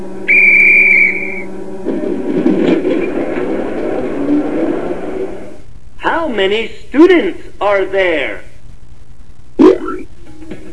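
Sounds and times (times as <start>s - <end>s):
loud steady train whistle: 0.2s - 1.6s
low rumble and clatter of a train getting underway: 1.7s - 5.6s
speech: 6.4s - 8.4s.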